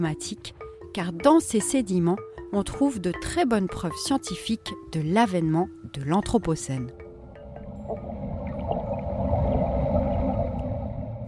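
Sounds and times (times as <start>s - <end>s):
speech: 0.0s - 7.0s
metal coring tube sinking into a lake, underwater rumble: 7.2s - 11.2s.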